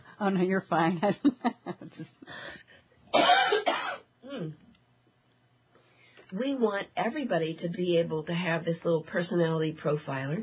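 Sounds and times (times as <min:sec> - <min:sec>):
speech: 0:00.2 - 0:03.7, 0:04.3 - 0:04.7, 0:06.3 - 0:10.4
loud harsh cough: 0:03.1 - 0:04.6.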